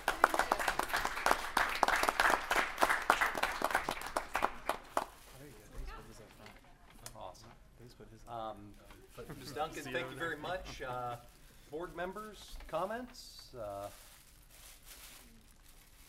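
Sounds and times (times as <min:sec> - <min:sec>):
audience applause at a school board meeting: 0:00.0 - 0:05.2
speech: 0:09.6 - 0:14.0.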